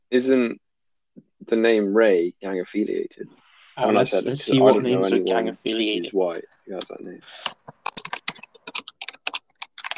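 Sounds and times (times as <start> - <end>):
speech: 0.1 - 0.6, 1.2 - 7.6
typing a search on a computer keyboard: 7.4 - 9.9.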